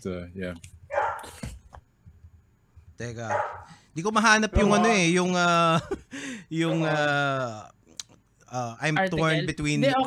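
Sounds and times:
speech: 0.0 - 1.4, 3.0 - 7.8, 8.5 - 10.0
low steady hum: 0.0 - 10.0
dog barking: 0.9 - 1.2, 3.3 - 3.7.

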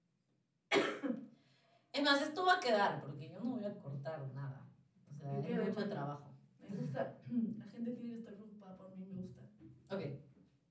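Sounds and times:
woman coughing: 0.7 - 1.3
speech: 2.0 - 3.8, 5.4 - 10.2.

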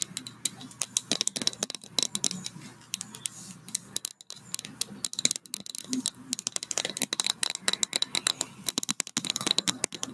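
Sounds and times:
quick tapping: 0.0 - 10.1
soft scratchy brushing strokes: 2.3 - 5.0.

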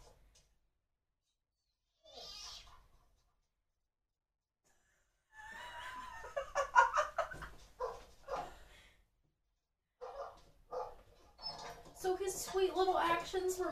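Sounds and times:
laughter: 5.4 - 7.6
dog barking and yelping: 7.8 - 8.6, 10.0 - 11.7
speech: 12.3 - 13.7.

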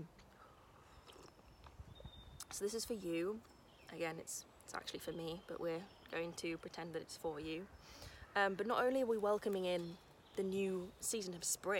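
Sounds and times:
speech: 0.0 - 0.2, 2.5 - 11.7
person sipping a warm drink: 0.8 - 1.5
person swallowing a warm drink: 1.0 - 1.4
soft wet mouth clicks: 1.0 - 1.4.

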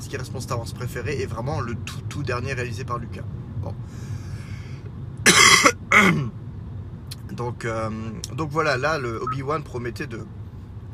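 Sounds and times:
speech: 0.1 - 4.2, 6.0 - 6.4, 7.4 - 10.4
person with a dry throat coughing: 5.3 - 6.3.

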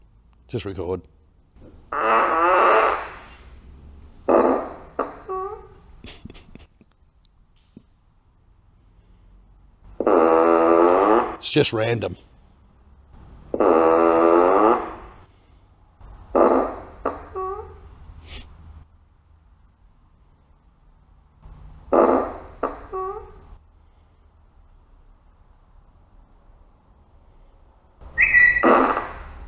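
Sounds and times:
speech: 0.5 - 1.2, 11.6 - 12.3
novelty fart sound effect from a car: 1.9 - 3.5, 4.2 - 5.6, 10.0 - 11.4, 13.5 - 15.3, 16.3 - 17.6, 21.9 - 23.3, 28.2 - 29.4.

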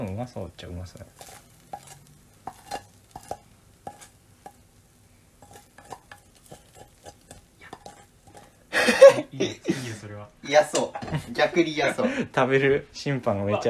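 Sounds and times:
food sizzling in a pan: 0.0 - 13.6
speech: 0.2 - 1.5, 9.3 - 13.6
utensil scraping and clinking against a pan while stir-frying food: 1.0 - 4.7, 5.3 - 8.7.

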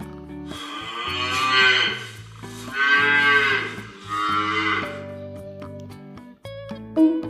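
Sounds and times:
light steady musical backing: 0.0 - 7.2
ox mooing: 0.5 - 5.2.

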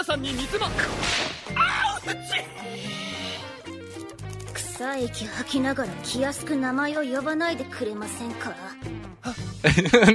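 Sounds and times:
speech: 0.0 - 3.1, 4.8 - 10.1
whip cracks and lashing strikes: 0.8 - 1.5
vocal sounds: 1.7 - 3.8
laughter: 9.3 - 10.1.

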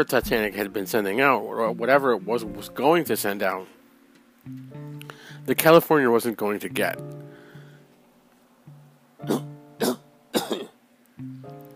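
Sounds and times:
speech: 0.0 - 3.8, 4.4 - 7.3, 9.2 - 9.9
strained voiced catch of breath: 5.0 - 5.5, 7.3 - 8.0
person coughing fit: 9.3 - 10.8.

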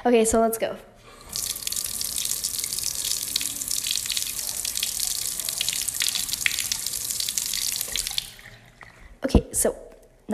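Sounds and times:
speech: 0.0 - 0.9, 9.2 - 10.3
hands being washed with foaming soap at a sink: 1.1 - 9.0
water rushing from a running tap at a sink: 1.1 - 9.1.

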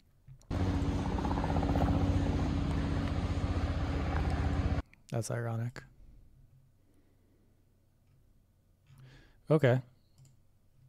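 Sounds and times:
helicopter flying overhead in the morning: 0.5 - 4.8
speech: 5.1 - 5.9, 9.5 - 9.9.

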